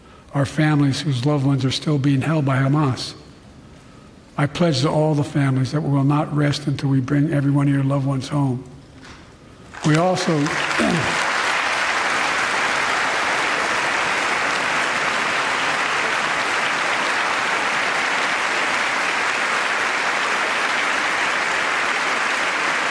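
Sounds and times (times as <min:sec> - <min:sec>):
speech: 0:00.3 - 0:03.2, 0:04.4 - 0:08.7, 0:09.8 - 0:11.2
sustained applause in a legislative chamber: 0:09.7 - 0:22.8.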